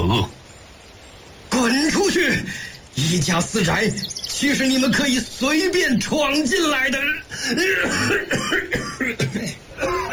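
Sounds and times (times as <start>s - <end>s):
speech: 0.1s - 0.4s, 1.9s - 10.1s
harsh throaty coughing fit: 7.3s - 10.1s.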